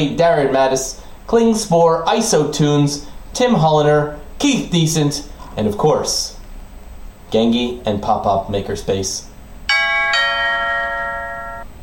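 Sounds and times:
speech: 0:00.0 - 0:06.4, 0:07.3 - 0:09.3
bell ringing with bright metallic strikes: 0:09.7 - 0:11.7.

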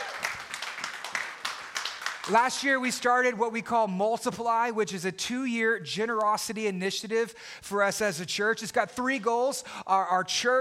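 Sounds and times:
church audience clapping: 0:00.0 - 0:02.9
speech: 0:02.3 - 0:10.6.

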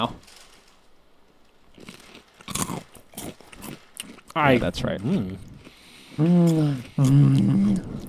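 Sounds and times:
speech: 0:00.0 - 0:00.2, 0:04.4 - 0:05.5, 0:06.2 - 0:08.0
cinnamon corn puffs being bitten and chewed: 0:01.7 - 0:08.0.

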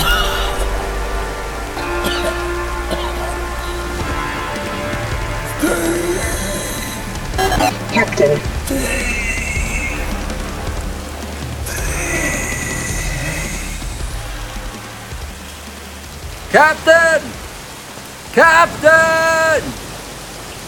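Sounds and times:
heavy rain falling: 0:00.0 - 0:20.6
raised voices calling out: 0:01.8 - 0:15.5, 0:16.5 - 0:17.4, 0:18.3 - 0:19.8
speech: 0:16.6 - 0:17.3, 0:18.4 - 0:19.7.

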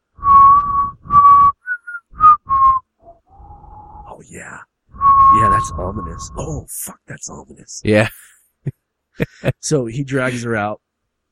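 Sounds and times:
person whistling a slow simple children's hymn melody: 0:00.2 - 0:04.1, 0:05.0 - 0:06.4
speech: 0:04.2 - 0:04.7, 0:05.6 - 0:10.8.

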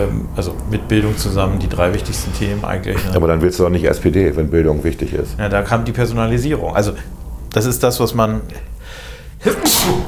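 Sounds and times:
speech: 0:00.0 - 0:10.0
person sneezing: 0:09.4 - 0:10.0.

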